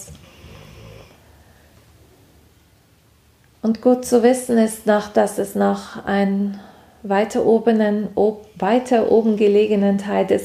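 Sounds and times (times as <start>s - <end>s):
dog snoring: 0.0s - 1.2s
speech: 3.6s - 10.4s.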